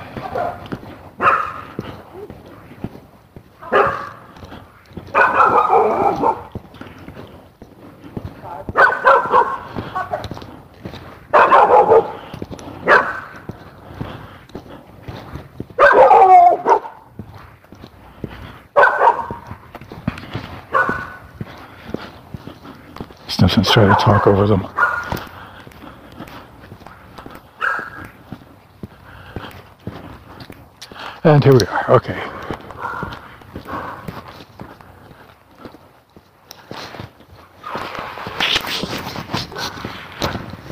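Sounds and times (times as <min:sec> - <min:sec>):
dogs barking: 0:00.0 - 0:02.8, 0:03.4 - 0:17.4, 0:18.1 - 0:28.5, 0:31.5 - 0:35.2, 0:37.6 - 0:38.1, 0:39.3 - 0:40.4
speech: 0:00.3 - 0:00.8, 0:23.5 - 0:24.8, 0:31.4 - 0:32.4.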